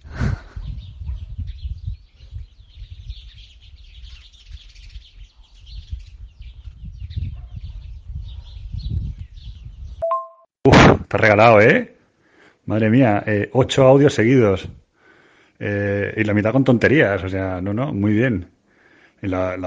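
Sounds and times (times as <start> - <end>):
birds chirping and clucking: 0.4 - 10.3
sharp tone: 10.0 - 10.5
speech: 11.1 - 11.9, 12.7 - 14.8, 15.6 - 18.6, 19.2 - 19.6.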